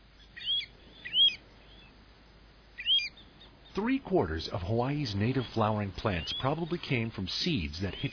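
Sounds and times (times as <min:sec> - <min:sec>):
Pacific golden plover whistled calls: 0:00.2 - 0:02.0, 0:02.8 - 0:08.1
speech: 0:03.8 - 0:08.1.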